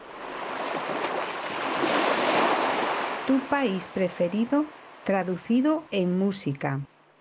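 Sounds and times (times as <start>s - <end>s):
ocean waves breaking in continuous surf: 0.0s - 5.9s
speech: 3.3s - 6.9s.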